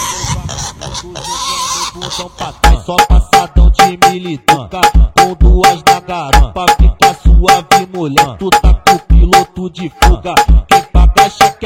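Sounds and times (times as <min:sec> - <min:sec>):
pigs grunting and oinking: 0:00.0 - 0:02.7
speech: 0:02.1 - 0:11.6.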